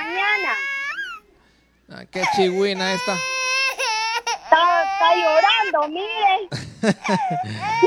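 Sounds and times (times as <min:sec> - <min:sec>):
small child crying in high wavering wails and sobbing gasps: 0:00.0 - 0:01.2, 0:02.2 - 0:06.5, 0:07.1 - 0:07.8
speech: 0:01.9 - 0:03.3, 0:04.5 - 0:07.8
laughter: 0:06.5 - 0:07.8.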